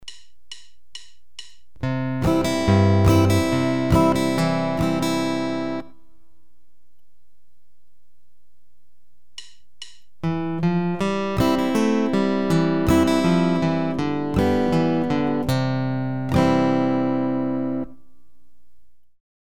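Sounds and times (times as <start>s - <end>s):
guitar thumb-brush-up picking patterns: 1.8s - 6.1s, 9.4s - 18.2s.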